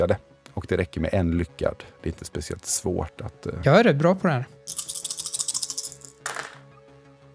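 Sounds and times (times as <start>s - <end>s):
speech: 0.0s - 4.9s
eight six-sided dice rattling and tumbling: 4.7s - 6.6s.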